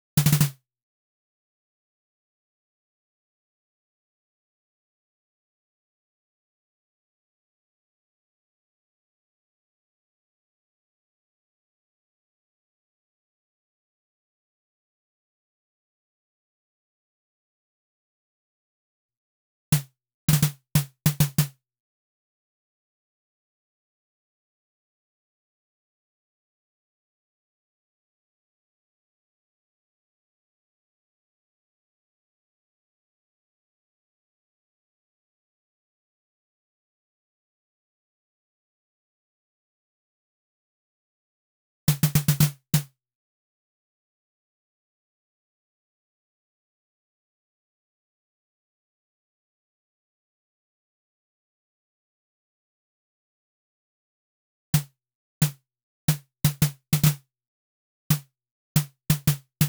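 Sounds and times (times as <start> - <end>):
snare drum fills: 0.2 - 0.6, 19.8 - 21.5, 41.9 - 42.9, 54.8 - 57.2, 58.8 - 59.6.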